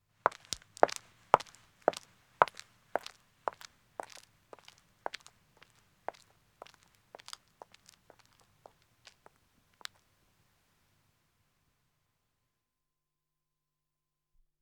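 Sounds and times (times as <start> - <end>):
woman's footsteps walking on a country road: 0.2 - 10.0.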